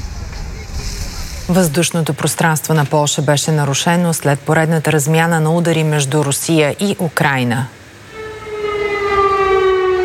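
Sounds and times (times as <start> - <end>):
speech: 1.5 - 7.8
air raid sirens sounding at night in the city of Lublin, Poland: 7.7 - 10.0.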